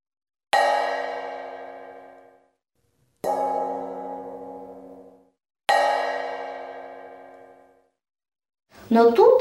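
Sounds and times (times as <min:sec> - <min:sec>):
large metal frying pan struck, ringing like a bell: 0:00.5 - 0:02.5, 0:03.2 - 0:08.0
speech: 0:08.9 - 0:09.4.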